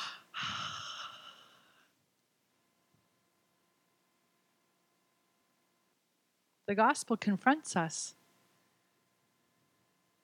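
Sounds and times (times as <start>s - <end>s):
person breathing during a church sermon: 0.0s - 2.0s
speech: 6.7s - 8.2s.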